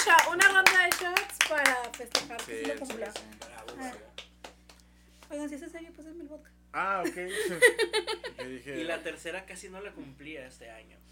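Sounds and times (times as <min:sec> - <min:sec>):
hands clapping: 0:00.0 - 0:05.4
speech: 0:02.0 - 0:04.2, 0:05.3 - 0:11.0
laughter: 0:07.0 - 0:09.2.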